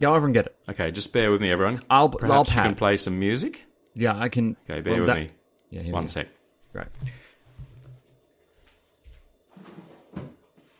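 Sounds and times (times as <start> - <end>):
speech: 0.0 - 7.2
man rummaging through drawers with thumps, scrapes and clattering: 9.4 - 10.7.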